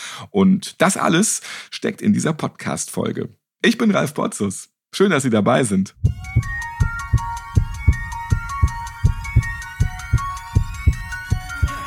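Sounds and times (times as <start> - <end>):
speech: 0.2 - 6.6
heartbeat sound effect thumping in low paired pulses: 6.0 - 11.8.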